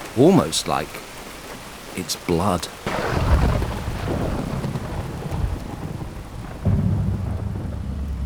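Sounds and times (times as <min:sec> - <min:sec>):
heavy rain pouring down: 0:00.0 - 0:08.2
speech: 0:00.2 - 0:01.1, 0:02.0 - 0:03.2
deep thunder rumbling: 0:02.9 - 0:08.2.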